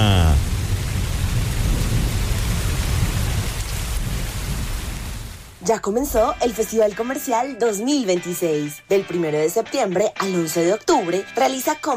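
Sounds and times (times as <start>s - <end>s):
steady heavy rain pouring: 0.0s - 5.6s
deep continuous rumble of thunder: 0.0s - 6.6s
speech: 5.7s - 11.9s.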